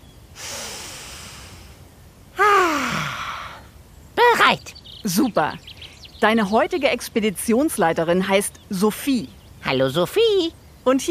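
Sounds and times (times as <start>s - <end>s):
deep breath in and out: 0.4s - 1.8s, 2.6s - 3.7s
voiced sigh: 0.4s - 1.8s, 2.4s - 3.7s
speech: 4.5s - 11.0s.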